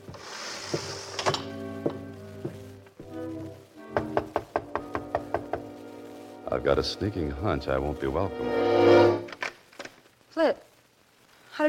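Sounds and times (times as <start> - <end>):
knocking on a penthouse door: 3.9 - 5.7
speech: 6.5 - 9.3, 10.4 - 10.6.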